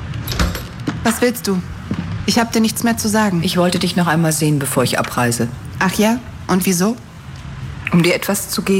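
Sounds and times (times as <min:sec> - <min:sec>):
door opening with sharp clicks: 0:00.2 - 0:01.2
speech: 0:01.0 - 0:07.1, 0:07.9 - 0:08.7.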